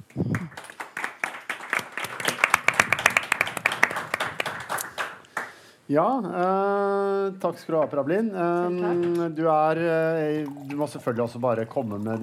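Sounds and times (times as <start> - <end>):
small group clapping: 0.0 - 5.7
speech: 5.9 - 12.2.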